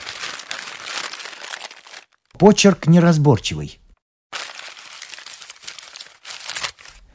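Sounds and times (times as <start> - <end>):
paper envelope being torn open: 0.0 - 2.3, 4.4 - 7.0
speech: 2.4 - 3.8.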